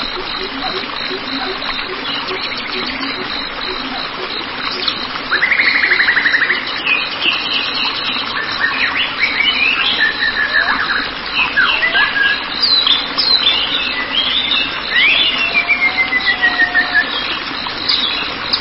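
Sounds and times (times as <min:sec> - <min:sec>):
white-rumped shama song: 0:00.0 - 0:18.5.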